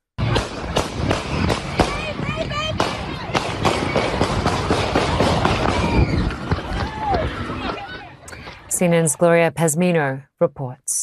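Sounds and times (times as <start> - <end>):
rapid gunshots at an outdoor festival: 0.2 - 7.4
noisy outdoor festival crowd: 0.2 - 10.8
people shouting and screaming as they scatter: 1.0 - 8.7
speech: 8.8 - 11.0.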